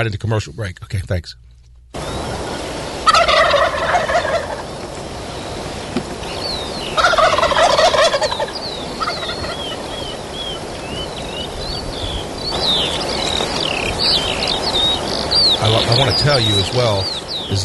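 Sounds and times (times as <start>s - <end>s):
speech: 0.0s - 2.2s, 15.9s - 17.6s
insects chirring: 2.0s - 17.6s
small birds twittering: 2.0s - 17.6s
turkeys gobbling on a ranch: 2.0s - 17.6s.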